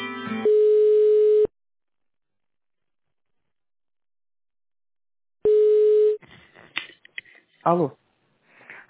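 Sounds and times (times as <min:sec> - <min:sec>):
telephone line tones while a call is transferred: 0:00.5 - 0:01.5, 0:05.5 - 0:06.2
speech: 0:07.7 - 0:08.0.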